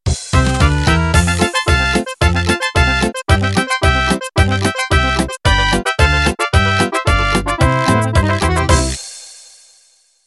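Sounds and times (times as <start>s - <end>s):
mariachi music ending: 0.1s - 9.1s.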